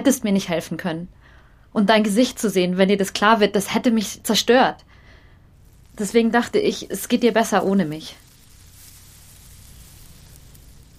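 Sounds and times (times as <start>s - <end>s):
speech: 0.0s - 4.9s, 6.0s - 8.2s
faint low rumble: 0.4s - 10.9s
cooking pot hissing in a kitchen: 5.4s - 10.9s.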